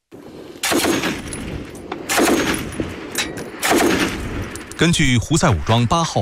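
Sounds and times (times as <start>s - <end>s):
automatic gunfire bursts during armed clashes: 0.6s - 1.4s, 2.0s - 2.8s, 3.5s - 4.4s
speech: 4.8s - 6.1s.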